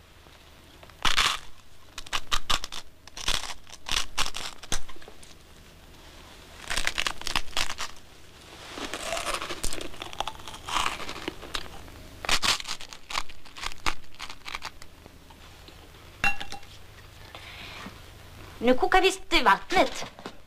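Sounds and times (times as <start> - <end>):
dry rusk being bitten and chewed: 0.8 - 5.4, 6.5 - 15.1
speech: 18.6 - 20.2.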